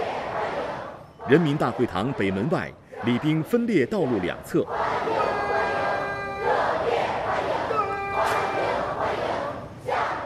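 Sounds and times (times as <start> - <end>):
steady crowd roar: 0.0 - 10.2
speech: 1.3 - 4.9
large group of young people cheering and shouting a welcome in unison: 4.8 - 9.0.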